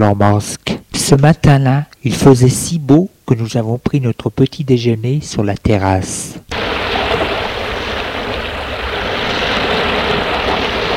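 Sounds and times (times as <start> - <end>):
speech: 0.0 - 7.2
ocean waves breaking in a steady roar of surf: 6.5 - 10.9.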